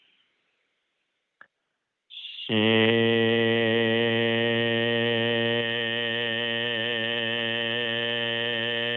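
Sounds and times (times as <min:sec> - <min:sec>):
voice making the qigong heart healing sound shing: 0:02.5 - 0:08.9.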